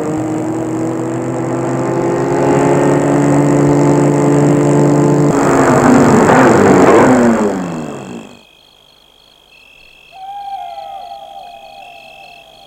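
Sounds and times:
car engine humming as the vehicle pulls up: 0.0s - 8.4s
faint high chirps: 9.6s - 12.6s.

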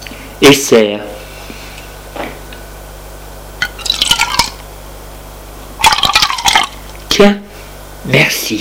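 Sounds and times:
steady hum: 0.0s - 8.5s
speech: 0.4s - 1.2s
drink poured from a bottle into glasses: 3.6s - 4.6s, 5.8s - 6.8s.

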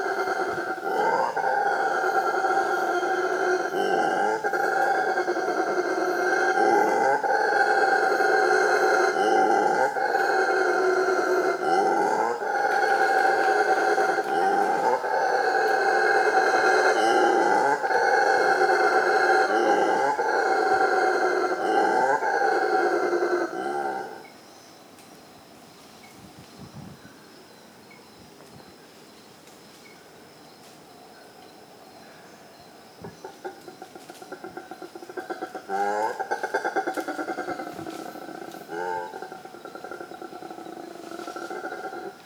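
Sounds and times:
howler monkeys roaring on Ilha Grande in Brazil: 0.0s - 24.3s, 33.0s - 42.2s.

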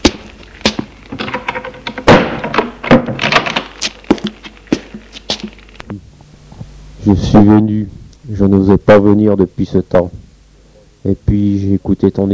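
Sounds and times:
wooden clunks, knocks and rattles of a door: 0.7s - 4.4s
wooden door pulled shut: 1.2s - 3.7s
speech: 7.1s - 10.2s, 11.0s - 12.3s.

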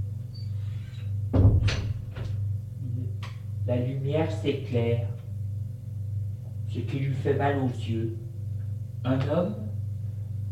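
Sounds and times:
steady low hum: 0.0s - 10.4s
door opening with knocks and clicks: 1.4s - 2.4s
speech: 3.7s - 5.2s, 6.8s - 8.3s, 9.0s - 9.6s.

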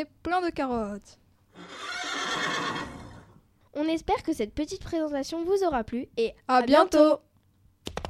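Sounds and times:
speech: 0.0s - 3.0s, 3.7s - 7.3s
horse neighing: 1.5s - 3.4s.

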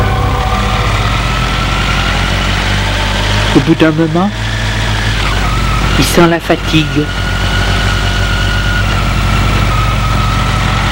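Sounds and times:
scooter engine idling: 0.0s - 10.8s
speech: 3.6s - 4.4s, 6.0s - 7.2s.

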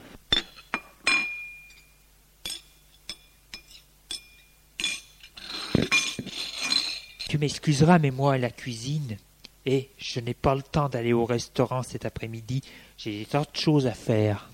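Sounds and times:
plates and cutlery clinking as an egg is served: 0.3s - 1.9s, 2.5s - 7.4s
speech: 7.4s - 14.5s.

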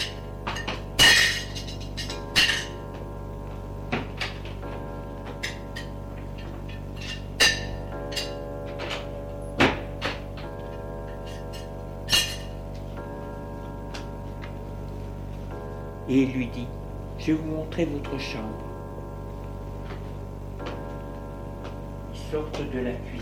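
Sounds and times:
dishes and glassware clinking as a man puts them away in a kitchen: 0.0s - 2.8s, 5.4s - 9.0s, 11.1s - 12.6s
steady low hum: 0.0s - 23.2s
speech: 16.2s - 18.7s, 22.3s - 23.2s.

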